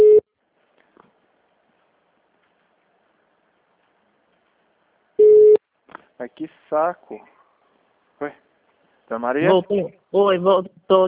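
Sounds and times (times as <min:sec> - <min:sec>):
short steady electronic telephone beep after a dropped call: 0:00.0 - 0:00.2, 0:05.2 - 0:05.6
speech: 0:06.2 - 0:07.4, 0:08.2 - 0:08.4, 0:09.1 - 0:11.0.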